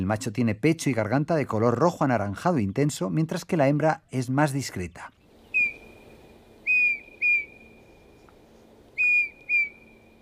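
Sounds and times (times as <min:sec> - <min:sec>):
speech: 0:00.1 - 0:05.2
male Eurasian bullfinch Pyrrhula pyrrhula singing sweet powerful whistles: 0:05.4 - 0:10.2.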